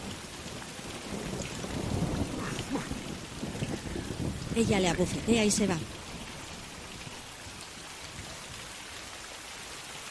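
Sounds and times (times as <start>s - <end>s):
heavy downpour of rain: 0.0s - 10.0s
speech: 4.6s - 6.0s.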